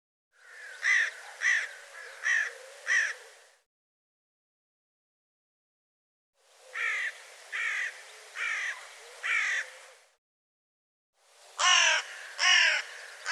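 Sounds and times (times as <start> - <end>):
bird calling with harsh grating caws: 0.4 - 3.6, 6.6 - 10.0, 11.6 - 13.2.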